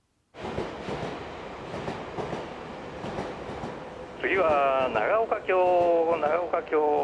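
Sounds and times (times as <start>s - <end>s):
train running on rails: 0.4s - 7.0s
speech: 4.2s - 7.0s.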